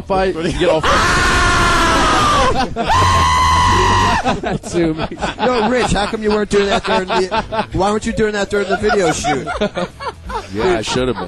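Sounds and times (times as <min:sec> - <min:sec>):
speech: 0:00.1 - 0:01.3, 0:02.5 - 0:03.4, 0:04.2 - 0:11.2
laughter: 0:00.4 - 0:11.2
man's fright scream: 0:00.8 - 0:04.3.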